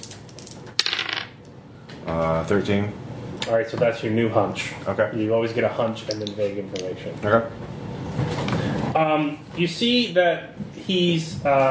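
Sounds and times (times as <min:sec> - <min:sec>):
dice rolling against a surface: 0:00.0 - 0:01.4, 0:06.1 - 0:06.9
speech: 0:02.0 - 0:08.4, 0:09.0 - 0:11.6.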